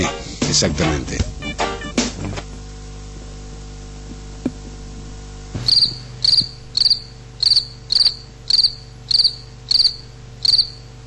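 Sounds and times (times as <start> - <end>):
speech: 0.0 - 1.4
low steady hum: 0.0 - 11.0
crickets chirping: 5.6 - 11.0.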